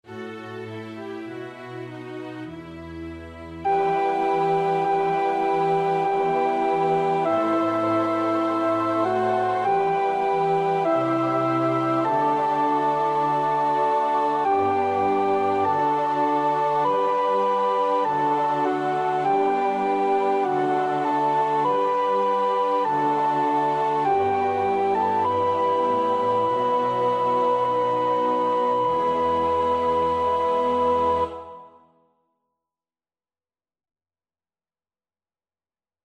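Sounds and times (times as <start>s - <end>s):
second soprano singing a choir part in practice: 3.7s - 31.8s.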